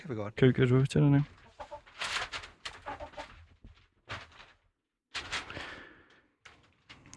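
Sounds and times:
speech: 0:00.0 - 0:01.4
hen clucking at the microphone: 0:01.4 - 0:01.9, 0:02.8 - 0:03.3.

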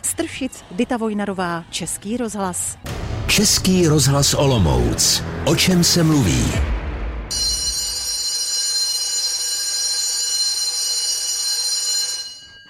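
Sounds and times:
speech: 0:00.2 - 0:06.8
electric school bell ringing: 0:07.3 - 0:12.6.

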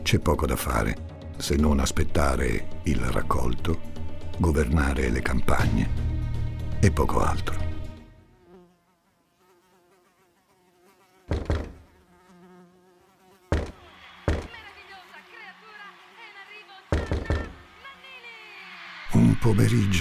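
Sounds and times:
speech: 0:00.1 - 0:06.1, 0:06.8 - 0:07.6, 0:19.4 - 0:19.9
housefly buzzing: 0:07.8 - 0:19.1
loud sharp knocks on a door: 0:11.3 - 0:11.9, 0:13.5 - 0:14.6, 0:16.9 - 0:17.6.

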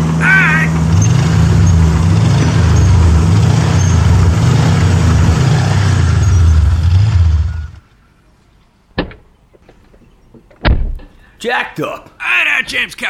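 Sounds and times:
backhoe heavy diesel engine rumbling as it drives up and parks: 0:00.0 - 0:07.8
speech: 0:11.5 - 0:13.0.

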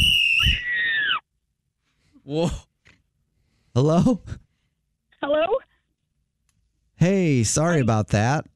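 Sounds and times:
coach's whistle shrill blast: 0:00.0 - 0:00.8
speech: 0:02.3 - 0:02.7, 0:03.8 - 0:04.4, 0:05.2 - 0:05.7, 0:07.0 - 0:08.5.

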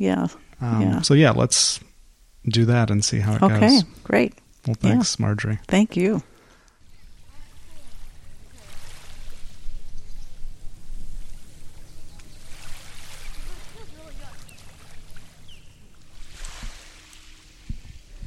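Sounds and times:
speech: 0:00.0 - 0:06.3
faint low murmur: 0:00.1 - 0:18.2
waves washing in on a beach as the tide comes in: 0:06.3 - 0:18.2.

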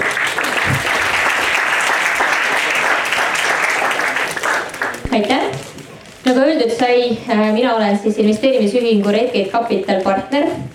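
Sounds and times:
large audience applauding a speaker: 0:00.0 - 0:05.2
speech: 0:05.2 - 0:05.5, 0:06.3 - 0:10.7.

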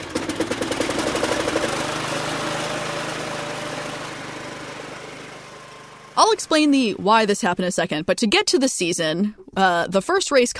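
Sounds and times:
lawnmower engine chugging and droning: 0:00.0 - 0:07.4
speech: 0:06.2 - 0:10.5.

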